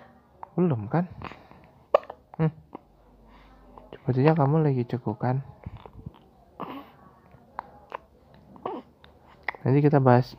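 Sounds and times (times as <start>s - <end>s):
faint breathy sounds of a baby: 0.0s - 4.5s, 5.1s - 10.3s
speech: 0.6s - 1.4s, 2.4s - 2.7s, 4.0s - 5.6s, 9.7s - 10.3s
baby hiccuping: 1.2s - 2.9s, 5.7s - 7.0s, 7.6s - 9.7s.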